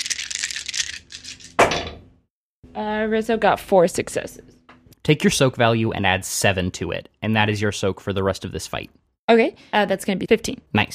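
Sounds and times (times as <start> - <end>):
dice rattling and clattering: 0.0 - 1.6
speech: 2.8 - 10.9.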